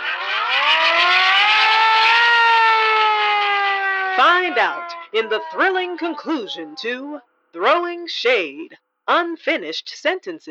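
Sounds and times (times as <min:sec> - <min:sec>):
siren wailing with buzzing tone: 0:00.0 - 0:07.3
speech: 0:04.5 - 0:10.4.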